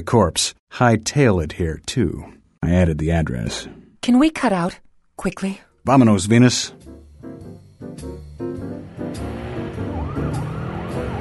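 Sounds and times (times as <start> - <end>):
speech: 0.0 - 6.9
engine rumbling: 7.0 - 11.2
police car sirens wailing: 9.0 - 11.2.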